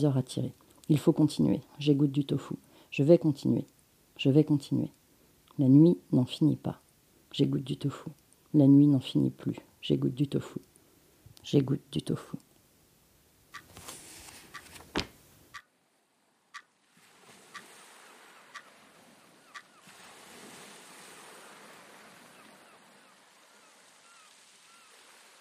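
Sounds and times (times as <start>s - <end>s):
speech: 0.0s - 5.0s, 5.6s - 10.7s, 11.4s - 12.5s
sea waves washing in: 16.8s - 25.4s.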